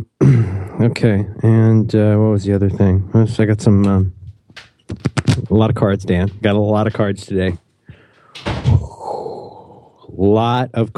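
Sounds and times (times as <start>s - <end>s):
speech: 0.0s - 4.2s, 4.9s - 7.6s, 10.2s - 10.9s
French door being pulled shut: 8.3s - 9.0s.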